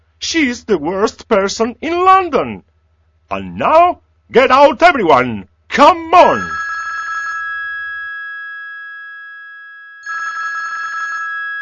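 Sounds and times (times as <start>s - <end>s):
speech: 0.3s - 2.7s, 3.3s - 6.6s
old-style telephone bell ringing: 6.3s - 11.5s.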